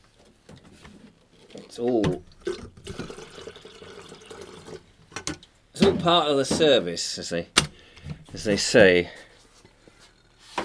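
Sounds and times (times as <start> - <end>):
water pouring into an electric kettle: 1.4 - 4.8
speech: 1.7 - 2.6, 5.8 - 7.6, 8.3 - 9.2.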